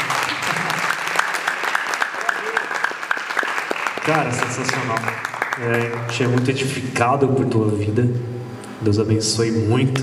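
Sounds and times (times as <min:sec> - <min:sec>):
crowd clapping in praise of the Lord: 0:00.0 - 0:07.0
speech: 0:04.1 - 0:10.0.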